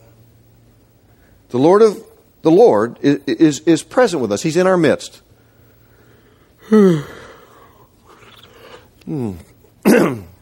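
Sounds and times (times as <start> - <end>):
speech: 1.5 - 5.2, 6.7 - 7.2, 9.1 - 10.3
person acting out an exaggerated yawn: 6.6 - 9.5.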